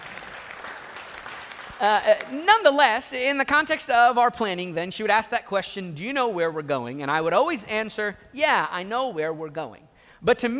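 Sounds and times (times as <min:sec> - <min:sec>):
small group of people applauding: 0:00.0 - 0:02.4
speech: 0:01.8 - 0:10.5.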